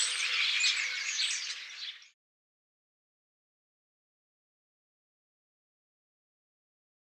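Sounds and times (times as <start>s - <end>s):
flock of common starlings chattering with high squeaks and whistles: 0.0s - 2.1s.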